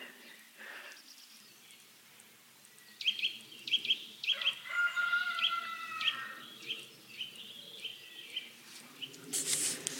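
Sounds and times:
small birds chirping: 0.0s - 9.4s
rooster crowing: 4.3s - 6.4s.

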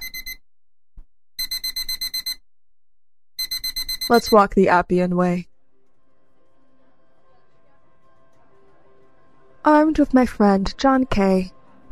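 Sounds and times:
alarm clock ringing: 0.0s - 0.4s, 1.4s - 2.4s, 3.4s - 4.4s
speech: 4.1s - 5.5s, 9.9s - 11.9s.

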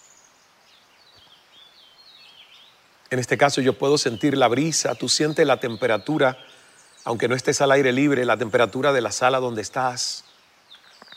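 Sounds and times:
several birds singing faintly: 0.0s - 11.1s
steady outdoor hiss: 0.0s - 11.1s
speech: 3.1s - 10.3s.

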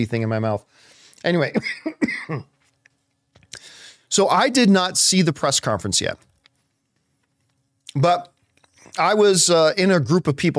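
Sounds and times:
speech: 0.0s - 2.5s, 4.1s - 6.3s, 7.9s - 10.5s
person coughing: 1.5s - 2.5s.

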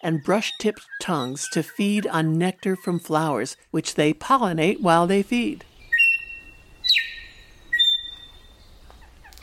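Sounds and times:
New Zealand bellbird singing: 0.0s - 3.5s, 5.8s - 8.7s
speech: 0.0s - 5.7s.

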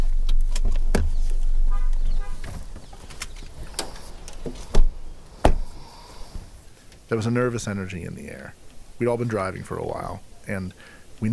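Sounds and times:
clicks and rustling as people climb out of a car: 0.0s - 5.7s
low engine rumble: 0.0s - 11.3s
car doors clunking and slamming shut: 0.1s - 6.6s
speech: 7.1s - 11.3s.

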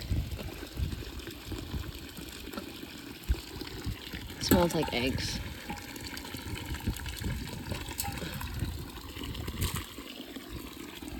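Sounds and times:
thermal sulfur water from a fountain gushing into a thermos: 0.0s - 11.1s
speech: 4.5s - 5.5s.

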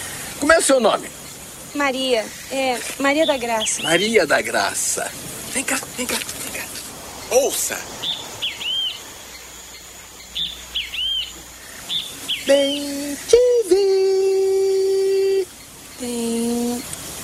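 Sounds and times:
great kiskadee calling: 0.0s - 17.2s
speech: 0.6s - 6.5s, 7.3s - 8.2s, 12.5s - 14.4s
person imitating a great kiskadee call: 12.4s - 16.9s.

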